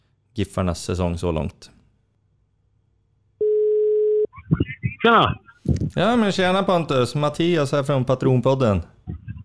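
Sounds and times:
speech: 0.4s - 1.8s, 5.0s - 9.2s
telephone ringing tone while placing a call: 3.4s - 4.3s.

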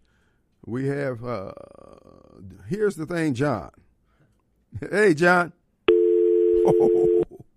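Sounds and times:
speech: 0.7s - 1.8s, 2.4s - 3.8s, 4.7s - 5.6s, 6.6s - 7.0s
telephone dial tone after a caller hangs up: 5.9s - 7.3s.

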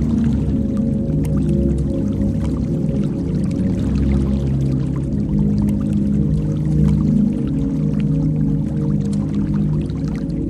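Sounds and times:
water rumbling with a thick muffled churning: 0.0s - 10.4s.

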